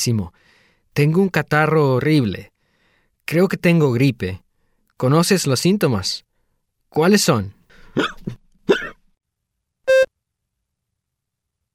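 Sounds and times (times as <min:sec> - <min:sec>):
speech: 0:00.0 - 0:02.5, 0:03.3 - 0:04.4, 0:05.0 - 0:06.3, 0:06.9 - 0:08.8
hiccups: 0:08.0 - 0:09.0.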